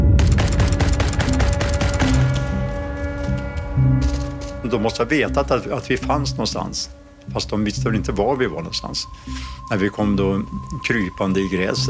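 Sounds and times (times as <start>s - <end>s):
low rumbling background: 0.0s - 11.8s
heavy machine gun firing bursts over troops: 0.1s - 2.3s
speech: 4.7s - 11.8s.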